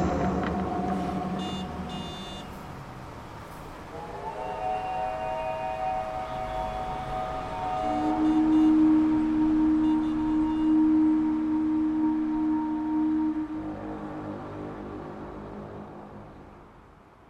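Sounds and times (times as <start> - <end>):
several sirens wailing: 0.0 - 15.6
low droning horn: 0.0 - 16.6.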